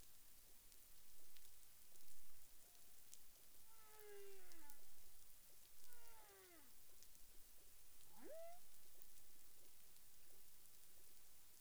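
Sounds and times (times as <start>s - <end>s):
humpback whale song units: 3.7s - 5.1s, 5.8s - 6.9s, 8.1s - 8.7s.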